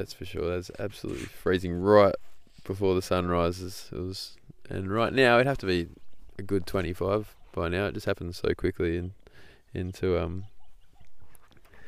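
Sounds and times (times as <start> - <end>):
speech: 0.0 - 10.5
bird calling at sunrise in the Everglades: 9.4 - 11.8
faint bird chirps at sunrise in the Everglades: 9.7 - 11.8.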